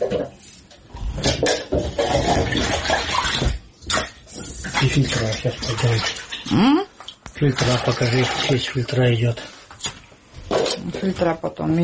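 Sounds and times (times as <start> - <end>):
water pouring steadily from a tap: 1.1 - 9.8
speech: 5.0 - 9.6, 10.9 - 11.8.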